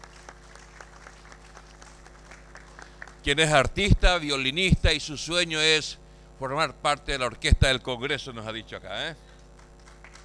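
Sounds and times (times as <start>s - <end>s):
audience applause sending off a young violinist at a public event: 0.0s - 3.6s, 9.5s - 10.2s
speech: 3.2s - 9.2s.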